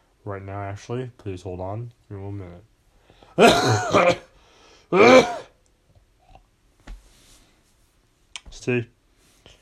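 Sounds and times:
speech: 0:00.2 - 0:02.7, 0:03.4 - 0:04.3, 0:04.9 - 0:05.4, 0:08.7 - 0:09.0
person with a cold coughing: 0:03.4 - 0:05.6.

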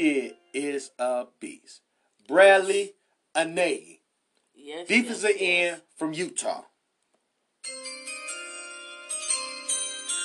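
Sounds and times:
speech: 0:00.0 - 0:04.0, 0:04.6 - 0:06.7
bright chime with several overlapping tones: 0:07.6 - 0:10.2.

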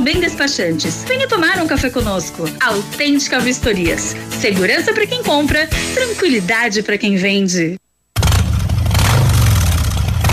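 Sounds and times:
speech: 0:00.1 - 0:07.8
motorcycle engine revving: 0:08.2 - 0:10.3.

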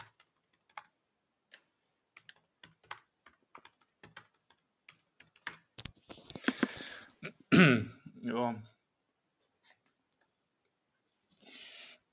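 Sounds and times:
computer keyboard typing as a chat message is written: 0:00.0 - 0:01.0, 0:02.1 - 0:06.0
speech: 0:07.2 - 0:08.7.

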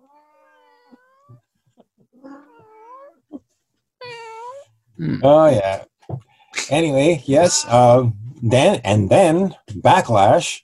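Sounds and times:
cat meowing: 0:00.0 - 0:01.5, 0:02.2 - 0:03.4, 0:04.0 - 0:04.8, 0:07.3 - 0:08.0
speech: 0:05.0 - 0:05.9, 0:06.7 - 0:10.6.

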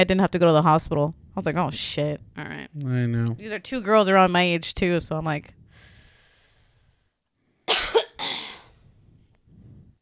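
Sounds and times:
speech: 0:00.0 - 0:05.6
quiet breathing noises: 0:05.6 - 0:07.7, 0:08.3 - 0:10.0
person coughing: 0:07.7 - 0:08.7.

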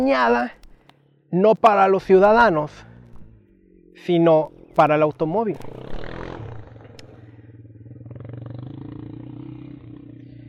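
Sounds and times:
speech: 0:00.0 - 0:00.6, 0:01.3 - 0:02.9, 0:04.0 - 0:06.0
motorcycle engine passing with a low rumble: 0:02.0 - 0:10.4.

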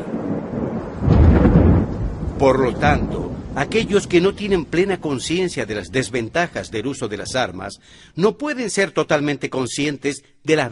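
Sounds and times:
deep thunder rumbling: 0:00.0 - 0:07.8
speech: 0:02.4 - 0:10.7.

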